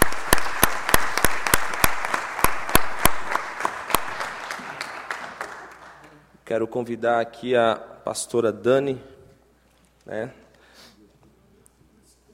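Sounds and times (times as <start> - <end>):
audience applauding for a music group: 0.0 - 6.2
speech: 6.5 - 9.1, 10.1 - 10.4.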